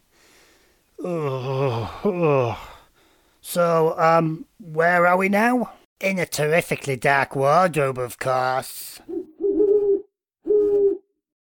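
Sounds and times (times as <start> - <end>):
speech: 1.0 - 2.7, 3.4 - 9.2
owl hooting: 9.1 - 11.0.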